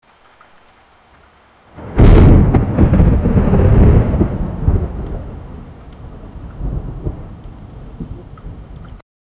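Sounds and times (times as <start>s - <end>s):
loud thunder: 1.8s - 9.0s.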